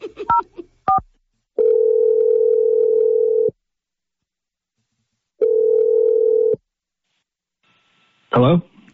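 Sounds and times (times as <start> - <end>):
long steady ringing tones on a phone line: 1.6 - 3.5, 5.4 - 6.6
speech: 8.4 - 8.7.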